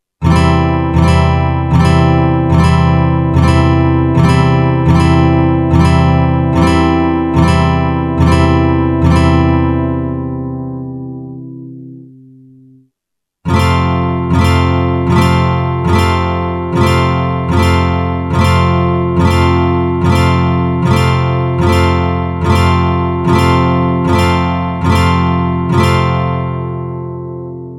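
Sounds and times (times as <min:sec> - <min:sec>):
chord progression in C: 0:00.2 - 0:12.8, 0:13.5 - 0:27.7.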